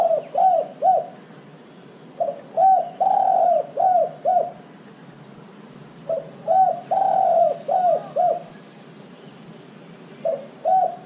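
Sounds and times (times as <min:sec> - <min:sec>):
dove cooing: 0:00.0 - 0:01.4, 0:02.2 - 0:04.7, 0:06.0 - 0:08.6, 0:10.2 - 0:11.0.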